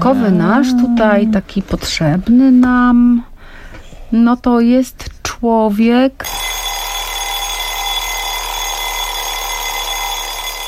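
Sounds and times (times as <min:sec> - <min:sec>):
speech: 0:00.0 - 0:03.3, 0:04.1 - 0:06.4
alarm clock ringing: 0:06.2 - 0:10.6.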